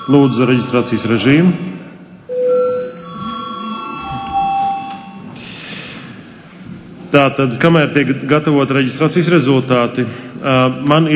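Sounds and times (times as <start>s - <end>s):
electronic bell ringing to call members of parliament to register: 0.0s - 1.4s, 2.3s - 5.4s
speech: 0.0s - 1.7s, 7.1s - 11.1s.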